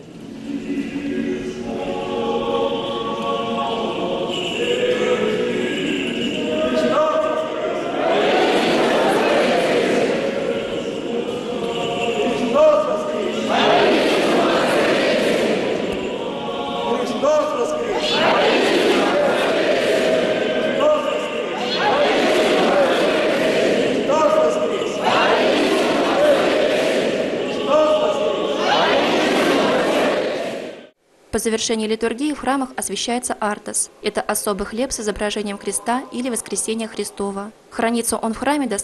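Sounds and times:
clergy and laity chanting praise at an Easter church service: 0.4 - 31.0
speech: 31.4 - 38.8.

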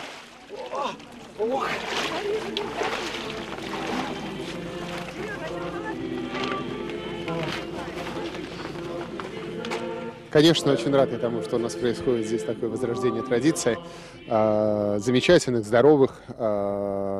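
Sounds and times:
people plunging into icy blessed water in an ice hole: 0.0 - 8.9
speech: 0.9 - 3.0, 10.3 - 17.1
crowd chatter and voices: 0.9 - 10.9.

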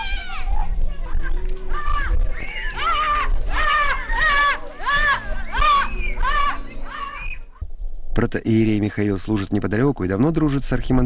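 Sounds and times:
group of children shrieking and squealing while being doused with water: 0.0 - 7.6
crowd noise: 0.0 - 7.7
speech: 8.2 - 11.0.

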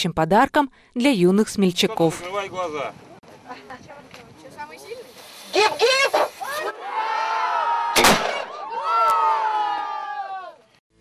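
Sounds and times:
speech: 0.0 - 4.9, 5.5 - 6.8
excited children shouting and whooping: 5.6 - 10.6
crowd cheering: 5.7 - 10.8
six-pounder cannon firing a salute: 8.0 - 8.5.

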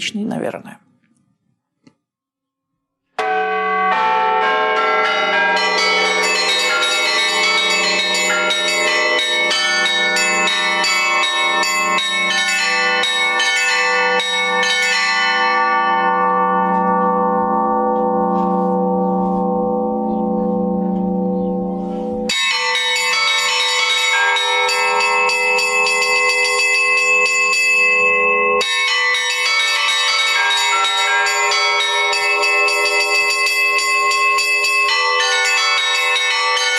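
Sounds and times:
speech: 0.0 - 0.8
church bells ringing in a dense continuous peal: 3.1 - 36.7.

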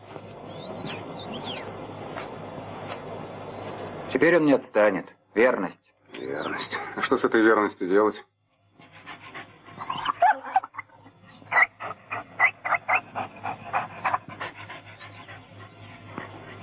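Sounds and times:
speech: 4.1 - 8.3
dog panting: 8.7 - 10.3, 11.2 - 16.6
dog whimpering with faint squeaks: 9.8 - 10.9.

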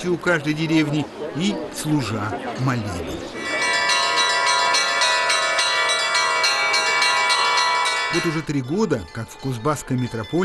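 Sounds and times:
speech: 0.0 - 3.5, 8.1 - 10.4
church bells pealing over the Tom River in Kuzbass, Russia: 3.4 - 10.4.

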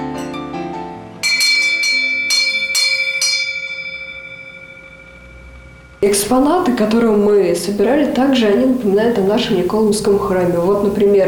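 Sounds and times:
small harness bells ringing under a horse arch: 1.2 - 7.0
softer, lower ringing: 1.2 - 11.2
speech: 6.2 - 11.2.

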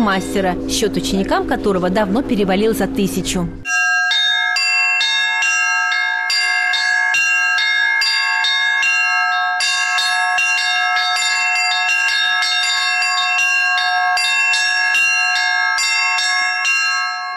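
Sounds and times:
speech: 0.1 - 3.7
several church bells rung by hand: 3.6 - 17.3.

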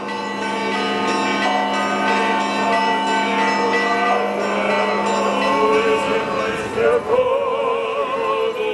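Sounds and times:
church bells pealing during a procession after the liturgy: 0.0 - 8.7
choir and clergy singing prayers: 3.5 - 8.7.

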